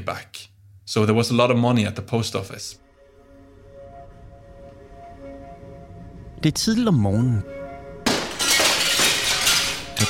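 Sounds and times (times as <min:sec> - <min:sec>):
speech: 0:00.0 - 0:02.8, 0:06.4 - 0:07.6
window pane shattering: 0:08.0 - 0:10.0
scattering glass shards tinkling: 0:08.2 - 0:10.0.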